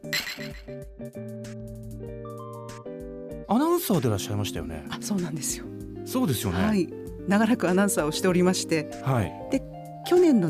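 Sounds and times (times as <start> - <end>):
glasses clinking in a toast: 0.0 - 0.7
speech: 0.1 - 10.4.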